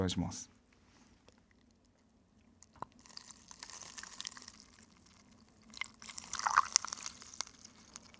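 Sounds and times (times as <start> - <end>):
speech: 0.0 - 0.6
Antarctic ice crackling and popping as it melts in lukewarm water: 2.6 - 8.1.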